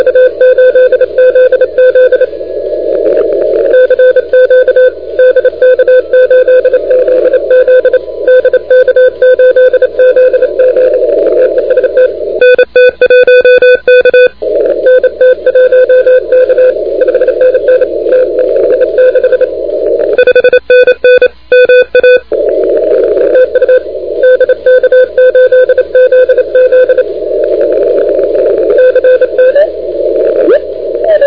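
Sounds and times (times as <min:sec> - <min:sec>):
CW morse code radio signal on 28MHz: 0:00.0 - 0:31.2.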